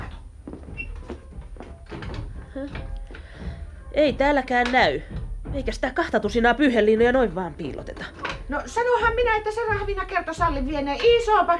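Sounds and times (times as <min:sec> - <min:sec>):
chest of drawers squeak: 0:00.0 - 0:03.1
chest of drawers being pulled open with wooden knocks and scrapes: 0:00.0 - 0:08.8
speech: 0:02.6 - 0:03.0, 0:04.0 - 0:11.5.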